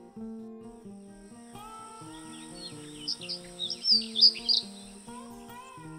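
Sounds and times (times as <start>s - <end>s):
soft steady music: 0.0s - 5.9s
ground-nesting bird giving shrill high-pitched trills: 1.6s - 5.2s.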